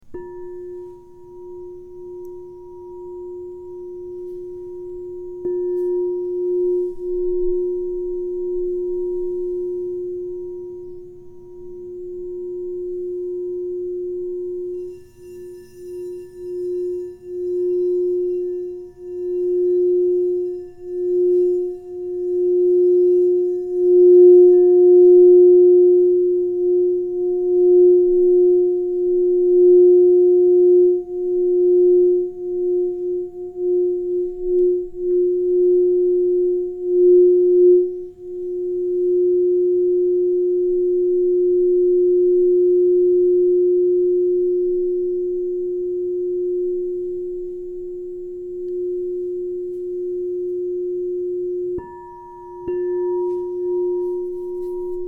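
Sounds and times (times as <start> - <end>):
crystal singing bowls ringing: 0.0 - 55.0.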